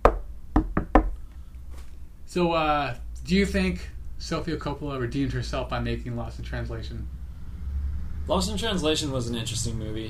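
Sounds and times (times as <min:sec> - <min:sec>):
knocking on a wooden surface: 0:00.0 - 0:01.2
speech: 0:02.3 - 0:07.2, 0:08.3 - 0:10.0.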